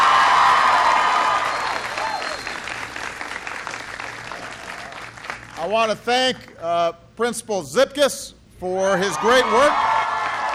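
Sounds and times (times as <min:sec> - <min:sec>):
audience applauding at a school presentation: 0:00.0 - 0:05.6, 0:10.0 - 0:10.5
speech: 0:05.7 - 0:09.9.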